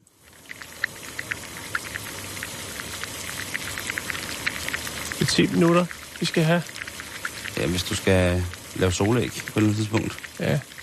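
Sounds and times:
bubbling pops and ticks of boiling water: 0.0 - 10.8
eggs boiling in a pot of water: 0.0 - 10.8
speech: 5.3 - 6.8, 7.6 - 10.8.

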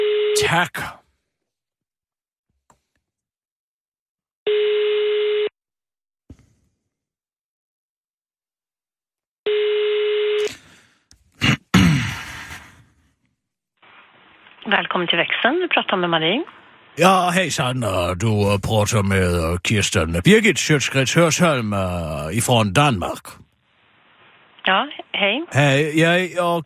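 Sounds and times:
speech: 0.4 - 1.0, 15.0 - 23.4, 24.6 - 26.6
electronic telephone ringback tone: 4.5 - 5.5, 9.5 - 10.4.

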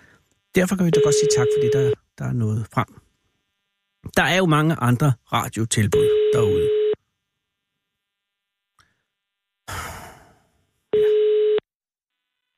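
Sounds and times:
speech: 0.6 - 3.0, 4.1 - 6.8
telephone ringing tone on an outgoing call: 1.0 - 2.0, 6.0 - 7.0, 11.0 - 11.6.

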